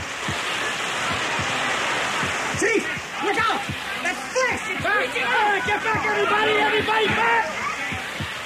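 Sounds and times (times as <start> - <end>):
fire hoses spraying water at full blast: 0.0 - 8.4
speech: 4.6 - 7.6.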